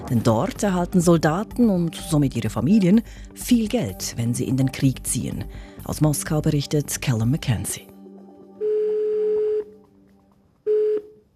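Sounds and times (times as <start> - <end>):
speech: 0.1 - 7.9
ringback tone of an outgoing telephone call: 8.6 - 9.8, 10.7 - 11.3.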